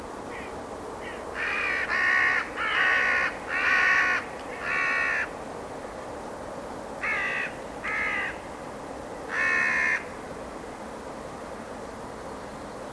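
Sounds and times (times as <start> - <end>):
steady background hiss: 0.0 - 12.9
bird giving hoarse cawing calls: 0.3 - 5.3, 7.0 - 8.5, 9.3 - 10.2.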